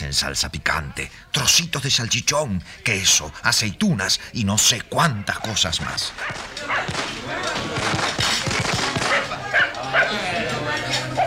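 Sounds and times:
indistinct voices: 0.0s - 11.2s
speech: 0.1s - 8.6s
several frightened dogs barking excitedly: 5.3s - 7.2s, 8.8s - 10.3s, 11.0s - 11.2s
sharp cracking bursts: 6.1s - 9.8s.

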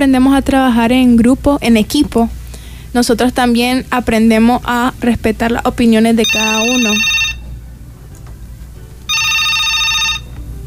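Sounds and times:
speech: 0.0s - 7.2s
low steady hum: 0.0s - 10.6s
telephone ringing with an incoming call: 6.2s - 7.6s, 9.1s - 10.4s.

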